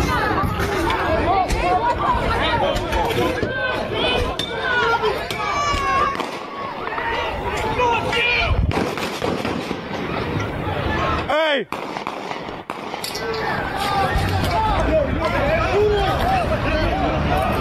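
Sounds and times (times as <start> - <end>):
noisy crowd babbling and shouting: 0.0 - 17.5
gunshots: 6.1 - 6.6, 8.7 - 10.2, 11.7 - 13.1.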